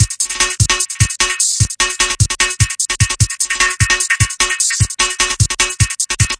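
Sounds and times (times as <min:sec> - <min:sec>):
drum loops and breaks: 0:00.0 - 0:06.3.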